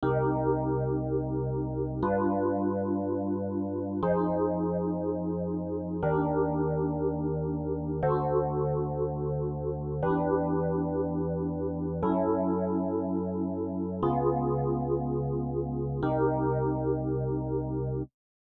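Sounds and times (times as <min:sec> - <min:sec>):
piano chords: 0:00.0 - 0:18.1.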